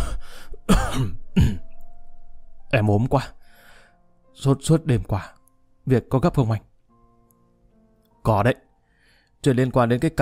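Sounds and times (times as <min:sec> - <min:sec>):
person fake coughing with phone covered: 0:00.7 - 0:01.6
speech: 0:02.7 - 0:03.4, 0:04.4 - 0:06.7, 0:08.2 - 0:08.6, 0:09.4 - 0:10.1.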